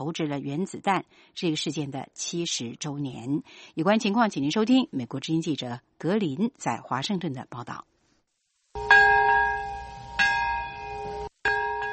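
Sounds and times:
speech: 0.0 - 7.9
memorial bell tolling: 8.8 - 11.9.

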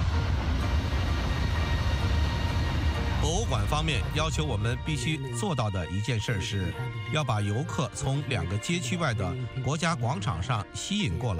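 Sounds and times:
train rumbling past on an elevated track: 0.0 - 5.8
speech: 3.3 - 11.3.

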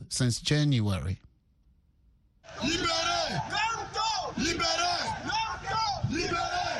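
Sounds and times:
speech: 0.1 - 1.2
opposition supporters shouting in protest in Yaoundé city center: 2.4 - 6.7.

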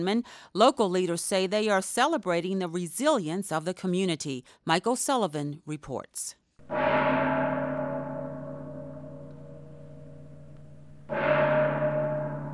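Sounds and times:
speech: 0.0 - 7.3
deep resonant gong struck in a cathedral: 6.6 - 12.5.

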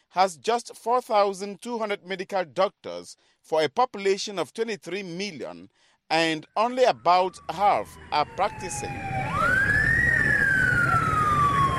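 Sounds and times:
speech: 0.1 - 9.3
ambulance siren wailing while rushing to a hospital in Yaoundé, Cameroon: 6.6 - 11.7
steady rumble of traffic noise: 7.3 - 11.7.

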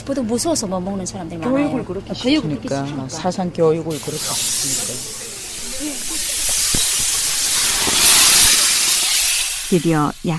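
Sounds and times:
speech: 0.1 - 5.2, 9.7 - 10.3
hydrogen gas hissing into long plastic balloons: 3.9 - 10.3.

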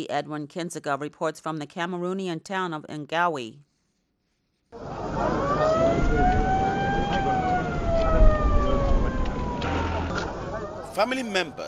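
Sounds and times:
speech: 0.0 - 3.7, 11.0 - 11.6
ambulance siren wailing as ambulances arrive in Ngawi Cameroon: 4.8 - 11.3
outdoor crowd noise in Ngawi Cameroon: 4.8 - 11.6
traffic noise in Ngawi Cameroon: 4.8 - 11.6.

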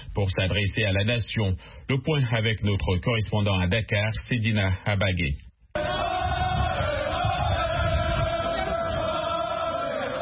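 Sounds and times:
speech: 0.2 - 5.9
huge crowd roaring and shouting victory cries at an opposition leader's home in Dakar Senegal: 5.8 - 10.1.

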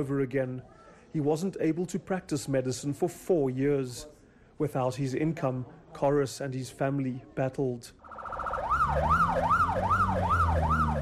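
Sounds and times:
speech: 0.0 - 8.0
Metro Police car siren wailing in Johannesburg South Africa: 8.0 - 11.0
steady traffic or engine rumble: 8.0 - 11.0.

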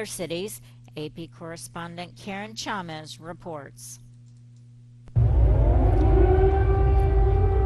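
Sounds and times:
speech: 0.0 - 4.0
heavy low rumble: 5.1 - 7.6
air raid siren wailing: 5.2 - 7.6.

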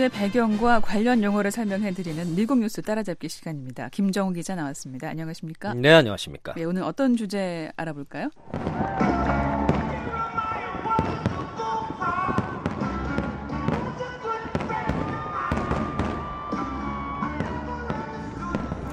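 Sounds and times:
speech: 0.0 - 9.6
Independence Day fireworks popping and banging: 8.4 - 18.9
crowd voices and cheering outdoors: 8.4 - 18.9.

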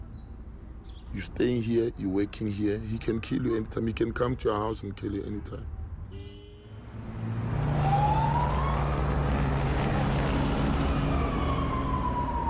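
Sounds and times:
police car engine and road noise: 0.0 - 12.4
speech: 1.1 - 6.3
police car siren wailing: 7.4 - 12.4.

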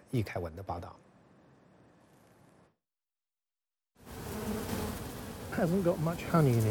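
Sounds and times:
speech: 0.1 - 1.1, 5.6 - 6.6
honeybees swarming around a hive: 4.0 - 6.6.

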